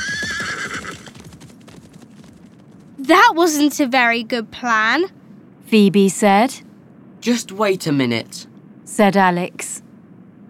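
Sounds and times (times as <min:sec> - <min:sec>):
horse neighing after being cut loose: 0:00.0 - 0:01.2
horses galloping away: 0:00.0 - 0:03.6
speech: 0:03.1 - 0:06.6, 0:07.2 - 0:09.7.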